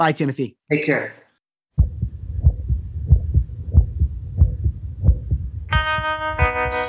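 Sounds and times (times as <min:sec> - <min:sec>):
speech: 0:00.0 - 0:01.2
recorded human heartbeat: 0:01.8 - 0:06.7.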